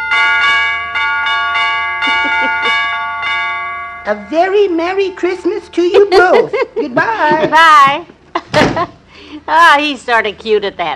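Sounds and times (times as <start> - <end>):
broken doorbell chime ringing: 0.0 - 6.2
laughter: 2.0 - 2.8, 5.9 - 9.0
speech: 4.0 - 10.9.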